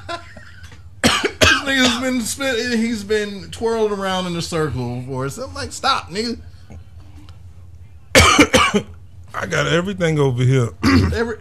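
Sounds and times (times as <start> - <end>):
person coughing: 0.5 - 2.2, 8.1 - 8.9, 10.8 - 11.3
speech: 1.7 - 6.5, 8.7 - 11.3.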